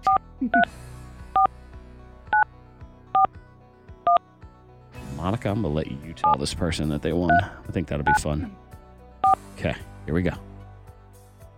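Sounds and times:
touch-tone beeps of a phone number being dialed: 0.0s - 0.7s, 7.3s - 8.2s, 9.2s - 9.4s
speech: 0.4s - 0.9s, 5.3s - 8.6s, 9.6s - 10.5s.

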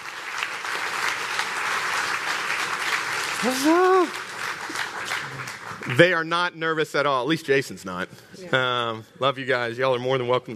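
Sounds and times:
audience applauding: 0.0s - 6.3s
speech: 3.4s - 4.8s, 5.9s - 10.5s.

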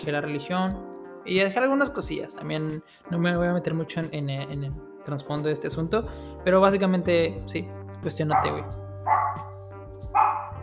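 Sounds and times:
speech: 0.0s - 9.2s
small dog barking: 8.3s - 9.6s, 10.2s - 10.6s.

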